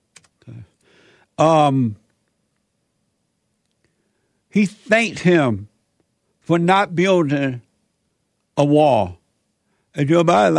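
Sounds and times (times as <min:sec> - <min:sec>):
computer keyboard typing clicks: 0:00.1 - 0:00.4
speech: 0:00.5 - 0:00.7, 0:01.4 - 0:02.0, 0:04.5 - 0:05.7, 0:06.5 - 0:07.6, 0:08.6 - 0:09.2, 0:10.0 - 0:10.5
loud voice burst: 0:04.6 - 0:05.5
murmuring: 0:04.7 - 0:05.4.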